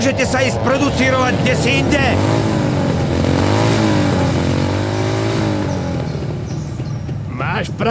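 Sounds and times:
speech: 0:00.0 - 0:02.6, 0:07.6 - 0:07.8
motorcycles revving loudly past: 0:00.0 - 0:07.8.

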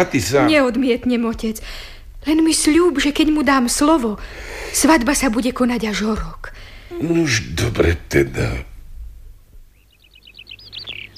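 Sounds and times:
speech: 0:00.0 - 0:08.7
soft low rumble: 0:00.0 - 0:11.1
skylark singing: 0:09.7 - 0:11.1.

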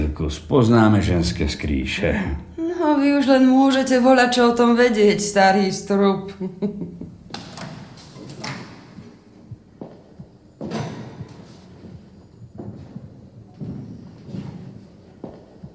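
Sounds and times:
speech: 0:00.0 - 0:07.0
heavy booming thuds: 0:07.9 - 0:15.7.

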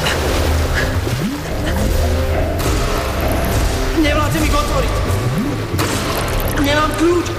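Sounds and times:
water rushing and pouring: 0:00.0 - 0:07.3.

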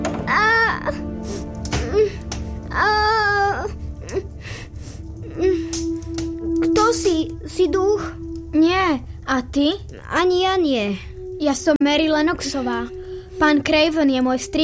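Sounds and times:
child crying and sobbing: 0:00.1 - 0:04.3, 0:05.2 - 0:05.8
speech: 0:07.2 - 0:14.6.

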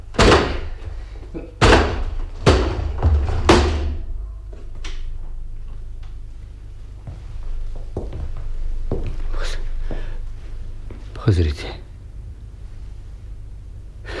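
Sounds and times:
locked door battered open with heavy splintering blows: 0:00.1 - 0:00.9, 0:01.6 - 0:04.2
speech: 0:11.3 - 0:11.8.

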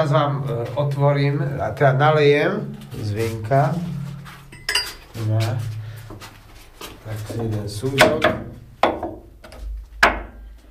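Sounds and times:
speech: 0:00.0 - 0:04.0, 0:05.2 - 0:05.8, 0:07.1 - 0:08.6
knocking on a wooden wine barrel in a wine cellar hewn into andesite tuff: 0:07.3 - 0:10.4.

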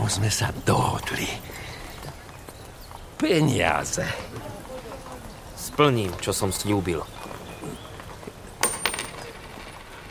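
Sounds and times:
speech: 0:00.1 - 0:01.6, 0:03.2 - 0:04.5, 0:05.6 - 0:07.2
gold coin dropping on a hard surface: 0:08.6 - 0:09.5.

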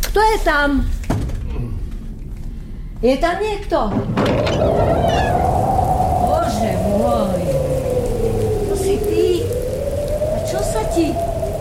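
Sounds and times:
speech: 0:00.2 - 0:01.0, 0:03.0 - 0:05.6, 0:10.5 - 0:11.3
heavy rain pouring: 0:03.8 - 0:11.6
long wavering cry: 0:04.4 - 0:11.6.

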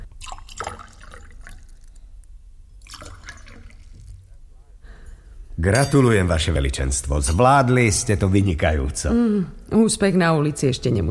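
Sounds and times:
fresh water pouring from a jug: 0:00.0 - 0:04.3
speech: 0:05.6 - 0:11.0.

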